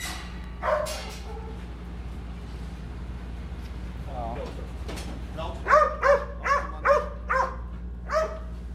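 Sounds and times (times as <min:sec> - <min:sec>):
service dogs barking in kennels in a K9 area: 0:00.6 - 0:01.7, 0:05.6 - 0:08.6.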